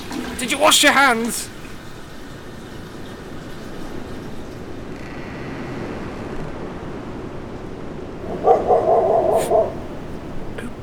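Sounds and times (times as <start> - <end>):
speech: 0.4 - 1.6
dog barking: 8.2 - 10.8.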